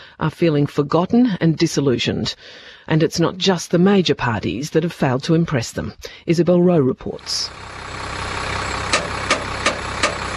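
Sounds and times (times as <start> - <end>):
speech: 0.2 - 8.0
K112 bus engine idling at a bus depot in the Blue Mountains: 7.2 - 10.3
sharp metallic clicks: 8.9 - 10.3.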